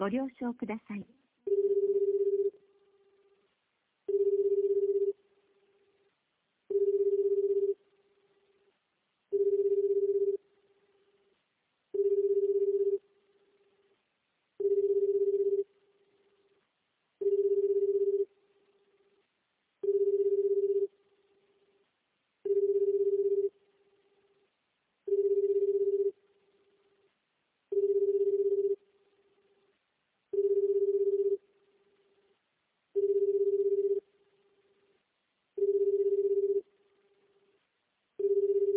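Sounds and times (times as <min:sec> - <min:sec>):
speech: 0:00.0 - 0:01.8
telephone ringback tone while calling: 0:01.5 - 0:02.5, 0:04.1 - 0:05.2, 0:06.7 - 0:07.8, 0:09.4 - 0:10.4, 0:12.0 - 0:13.0, 0:14.6 - 0:15.6, 0:17.2 - 0:18.3, 0:19.8 - 0:20.9, 0:22.5 - 0:23.5, 0:25.1 - 0:26.1, 0:27.7 - 0:28.8, 0:30.4 - 0:31.4, 0:33.0 - 0:34.0, 0:35.6 - 0:36.6, 0:38.2 - 0:38.7.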